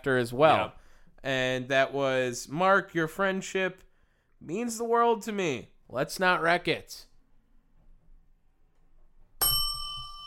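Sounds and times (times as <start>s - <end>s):
speech: 0.0s - 7.1s
bright bell ding: 9.4s - 10.2s.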